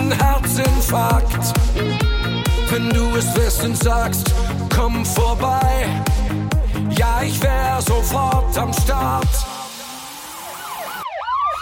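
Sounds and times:
speech: 0.1s - 9.5s
emergency vehicle siren wailing: 9.6s - 11.5s.

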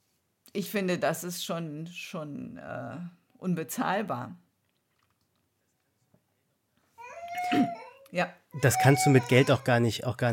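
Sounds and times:
speech: 0.5s - 4.4s, 7.5s - 10.3s
young child fussy whining: 7.0s - 10.3s.

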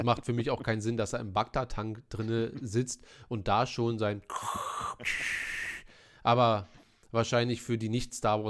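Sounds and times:
speech: 0.0s - 5.6s, 6.2s - 8.4s
voice imitating heavy mechanical respirator breathing: 4.3s - 6.0s.

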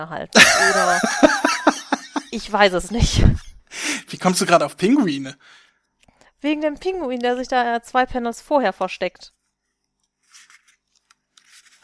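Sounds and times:
speech: 0.0s - 1.5s, 2.3s - 3.4s, 4.1s - 5.6s, 6.4s - 9.4s
laughter: 0.4s - 2.5s
comic book pages being turned by hand: 9.7s - 11.8s.

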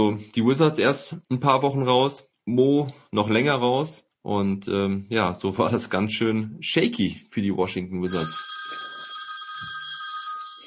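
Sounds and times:
speech: 0.0s - 8.5s
telephone ringing with a bright electronic tone: 8.1s - 10.6s.

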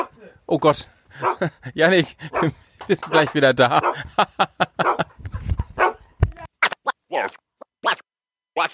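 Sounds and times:
speech: 0.5s - 5.0s
laughter: 1.1s - 5.8s
dog running off barking in sharp yelps: 1.2s - 1.5s, 2.3s - 2.6s, 3.8s - 4.0s, 4.8s - 5.1s, 5.8s - 6.1s, 7.1s - 7.4s.

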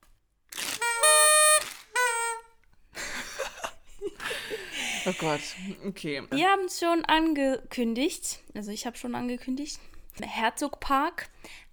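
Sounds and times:
toy horn blown as a spoiler alarm: 0.6s - 2.5s
laughter: 3.0s - 5.9s
speech: 5.0s - 11.6s.

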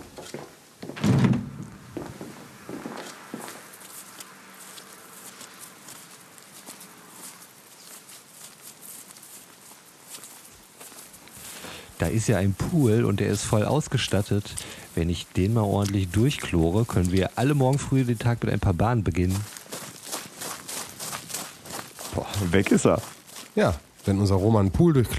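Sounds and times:
softer knocks and thuds: 0.0s - 2.9s
heavy door opening in the dark: 0.0s - 3.4s
faint shuffling steps: 0.0s - 25.1s
quiet rustling: 0.0s - 25.1s
speech: 12.0s - 19.5s, 22.4s - 25.1s.

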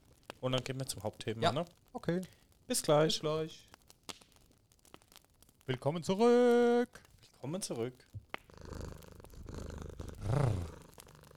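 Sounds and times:
speech: 0.4s - 3.7s, 5.7s - 8.2s
cat purring: 8.4s - 11.3s.

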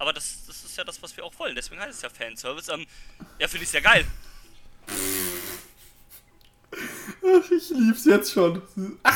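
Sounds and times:
speech: 0.1s - 4.3s, 7.2s - 9.1s
fart noise blown with the lips into a microphone: 4.9s - 5.8s.

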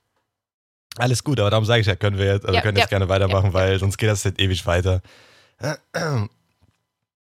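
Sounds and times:
speech: 1.0s - 6.4s
harsh throat-clearing coughs: 5.7s - 6.3s.

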